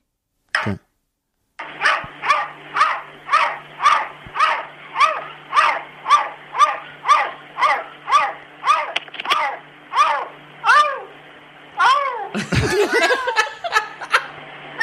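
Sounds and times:
cat barking like a dog out of a window: 1.6s - 11.2s, 11.8s - 12.4s
laughter: 12.3s - 14.3s.

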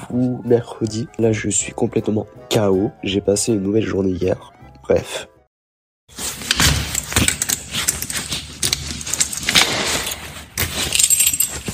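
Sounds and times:
speech: 0.1s - 5.3s
keys jangling and clinking while locking a front door: 6.8s - 11.7s.

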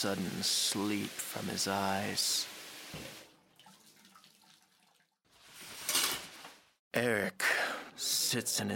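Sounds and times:
speech: 0.0s - 3.2s, 7.0s - 8.7s
water running from a tap: 0.0s - 5.1s.

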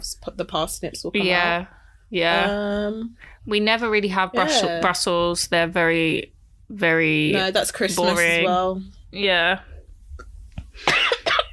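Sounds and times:
speech: 0.2s - 9.7s
person coughing: 10.8s - 11.5s.

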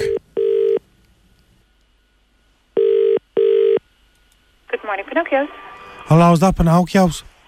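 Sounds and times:
telephone ringback tone of an outgoing call in a double-ring pattern: 0.0s - 0.8s, 2.8s - 3.8s
speech: 4.9s - 7.3s.

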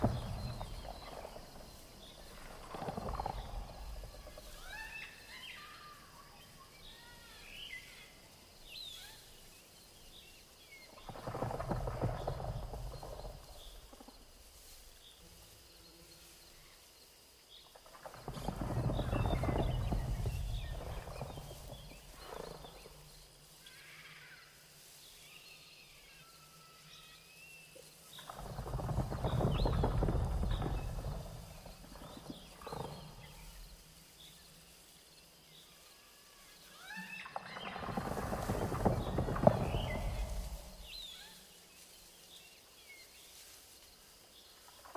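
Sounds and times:
deep rumbling animal calls in a jungle: 0.0s - 5.8s, 10.9s - 14.1s, 17.9s - 23.1s, 28.2s - 33.8s, 36.8s - 41.4s
faint rustles and creaks: 0.0s - 44.9s
steady high insect hum: 0.0s - 44.9s.

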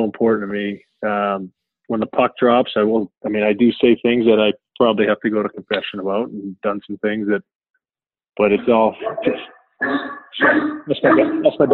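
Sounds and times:
speech: 0.0s - 7.6s, 8.4s - 11.7s
dog barking: 8.9s - 11.7s.

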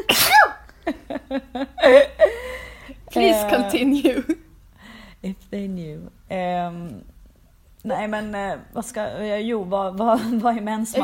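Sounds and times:
loud sneeze with a sharp burst of breath: 0.0s - 0.6s
speech: 1.3s - 2.2s, 3.2s - 4.3s, 7.8s - 11.0s
brief exhale-like sound: 2.3s - 3.0s, 4.8s - 5.2s.

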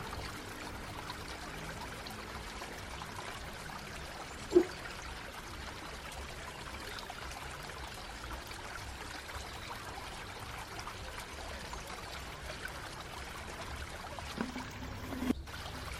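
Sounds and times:
flowing river water: 0.0s - 15.9s.

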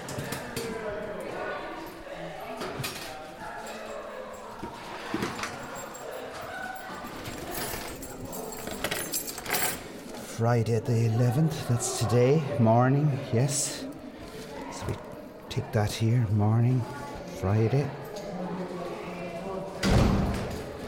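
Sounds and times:
indistinct voices murmuring in a busy background: 0.0s - 20.8s
keys jangling and clinking: 3.4s - 10.2s
speech: 10.4s - 13.8s, 15.7s - 18.0s.

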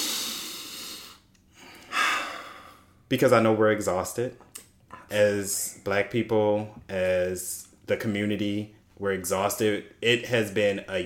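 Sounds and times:
slow deep breaths: 0.0s - 3.0s
speech: 3.1s - 4.5s, 5.1s - 11.0s.

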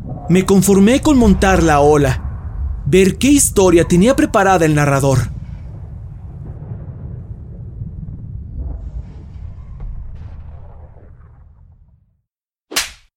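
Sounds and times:
deep rumbling whoosh: 0.0s - 12.1s
speech: 0.3s - 2.2s, 2.9s - 5.4s
slap to the face: 12.7s - 13.1s.

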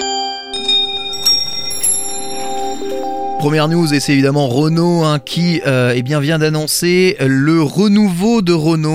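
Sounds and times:
short bright bell-like chime jingle: 0.1s - 6.2s
speech: 3.4s - 8.9s.

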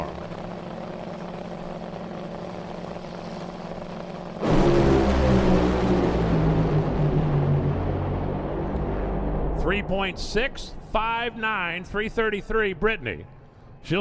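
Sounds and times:
Top Fuel dragster engine roar during a run down the drag strip: 2.7s - 10.9s
speech: 9.8s - 14.0s.

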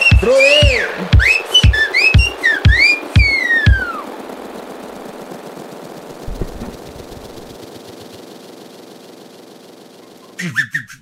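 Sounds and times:
whistle: 0.0s - 4.1s, 10.1s - 11.0s
speech: 0.2s - 0.6s
low thumps: 6.2s - 7.6s.

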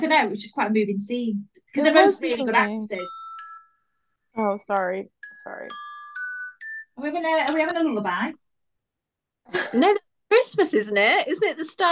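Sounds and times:
speech: 0.0s - 3.2s, 4.4s - 5.8s, 7.0s - 8.4s, 9.5s - 11.9s
mobile phone ringtone playing a bright electronic melody: 2.9s - 4.4s, 5.2s - 7.2s.

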